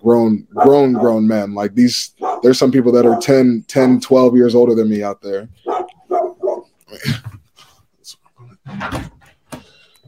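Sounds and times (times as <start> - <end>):
speech: 0.0 - 5.6, 8.7 - 9.2
pit bull puppy giving high-pitched yaps: 2.2 - 3.4, 5.6 - 6.7.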